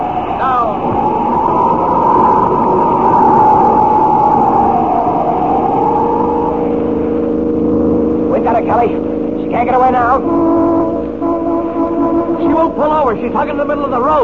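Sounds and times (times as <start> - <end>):
car tire squealing while skidding around a curve: 0.0 - 14.2
speeding car engine roaring: 0.0 - 14.2.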